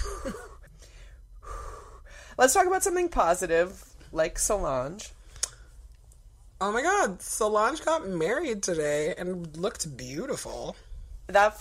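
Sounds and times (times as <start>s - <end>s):
deep breathing: 0.0s - 2.4s
speech: 2.4s - 5.2s, 6.6s - 11.5s.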